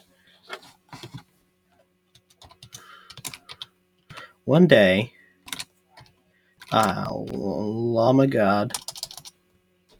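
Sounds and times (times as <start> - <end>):
typing on a computer keyboard: 2.2 - 4.2, 5.5 - 7.0, 8.7 - 9.4
speech: 4.5 - 5.2, 6.7 - 8.9.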